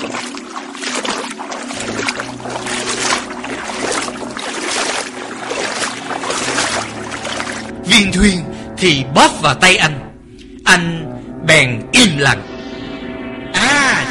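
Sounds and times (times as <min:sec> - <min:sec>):
footsteps wading through water at a cave entrance: 0:00.0 - 0:07.8
speech: 0:08.0 - 0:10.1, 0:10.7 - 0:12.5.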